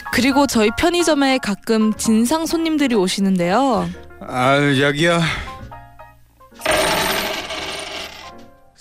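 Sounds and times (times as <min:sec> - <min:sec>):
speech: 0:00.1 - 0:05.5
handful of coins thrown onto a convenience store counter: 0:06.6 - 0:08.3.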